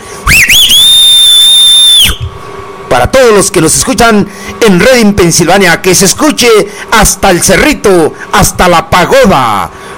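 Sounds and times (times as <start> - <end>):
loud human whistle: 0.2 - 2.4
speech: 2.9 - 9.8.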